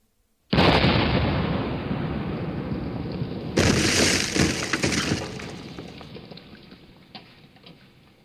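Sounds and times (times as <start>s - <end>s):
shell explosion: 0.5s - 6.2s
warship cannon shot: 0.5s - 6.2s.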